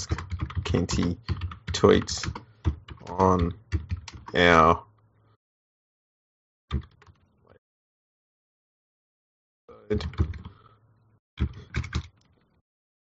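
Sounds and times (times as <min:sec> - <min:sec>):
speech: 0:00.0 - 0:02.4, 0:03.1 - 0:04.9, 0:09.9 - 0:10.4
typing on a computer keyboard: 0:00.0 - 0:04.4, 0:09.9 - 0:10.6, 0:11.4 - 0:12.2.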